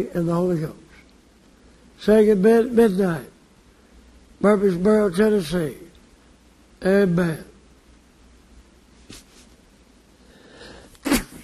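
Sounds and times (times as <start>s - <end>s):
speech: 0.0s - 0.8s, 2.0s - 3.3s, 4.4s - 5.9s, 6.8s - 7.5s
person sniffing: 10.2s - 11.4s
person sneezing: 10.6s - 11.4s.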